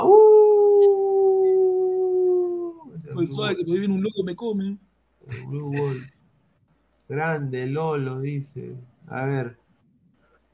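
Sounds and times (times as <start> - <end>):
person imitating a wolf howl: 0.0 - 3.0
speech: 3.2 - 6.2, 7.1 - 9.6.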